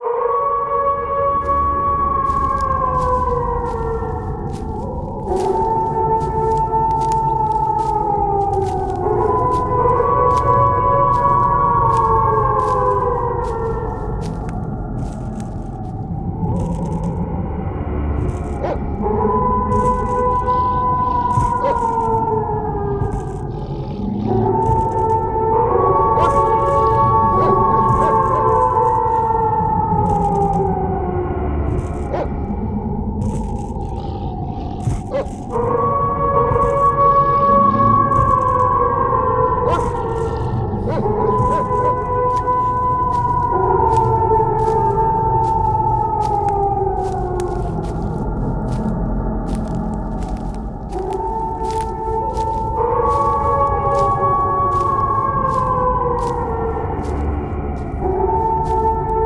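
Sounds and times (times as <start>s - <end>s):
wolves howling: 0.0s - 59.2s.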